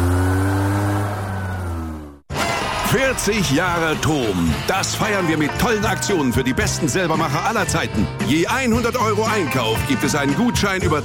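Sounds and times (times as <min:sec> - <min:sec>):
Vespa scooter engine revving: 0:00.0 - 0:03.1
speech: 0:02.9 - 0:11.0.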